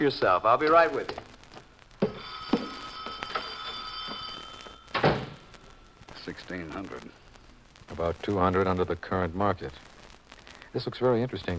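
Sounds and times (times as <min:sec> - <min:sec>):
speech: 0:00.0 - 0:01.3, 0:06.3 - 0:07.2, 0:07.9 - 0:09.9, 0:10.7 - 0:11.5
telephone ringing in an office: 0:02.0 - 0:05.7.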